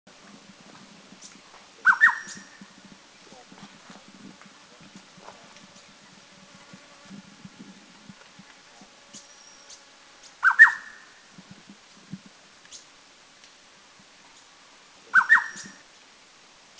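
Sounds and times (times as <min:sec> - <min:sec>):
Rusty-cheeked Scimitar Babbler calling at Doi Lang in Thailand: 0:01.2 - 0:02.7, 0:09.1 - 0:11.2, 0:15.1 - 0:15.8.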